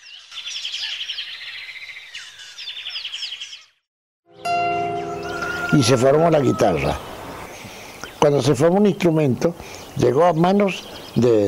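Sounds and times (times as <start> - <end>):
bright chorus of birdsong with rapid chirps and trills: 0.0 - 11.4
loud sustained musical tone: 4.3 - 7.5
speech: 5.8 - 7.1, 8.2 - 11.4.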